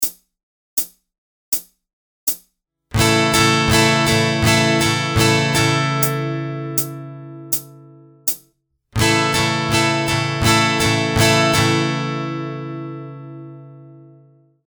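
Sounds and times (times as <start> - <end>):
constant pulse strumming pattern with capo 2: 2.9 - 8.4, 9.0 - 14.4.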